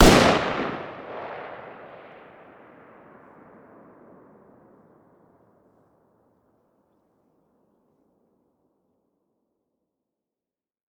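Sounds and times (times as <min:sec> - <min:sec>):
distant fire: 0:00.0 - 0:04.8.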